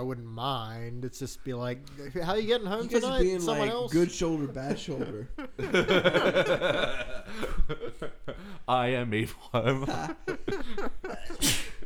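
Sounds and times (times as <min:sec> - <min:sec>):
speech: 0:00.0 - 0:11.6
laughter: 0:02.8 - 0:08.7, 0:09.4 - 0:11.8
sneeze: 0:11.4 - 0:11.8.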